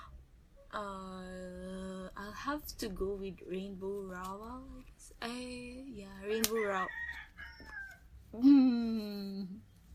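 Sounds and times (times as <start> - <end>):
speech: 0.7 - 1.2, 2.4 - 7.2, 8.3 - 9.6
rooster crowing: 6.6 - 8.1.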